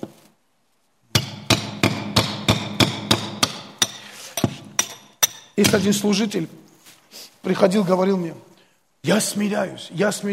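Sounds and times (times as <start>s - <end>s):
hammer pounding a nail: 1.1s - 6.0s
speech: 5.6s - 6.7s, 7.4s - 10.3s.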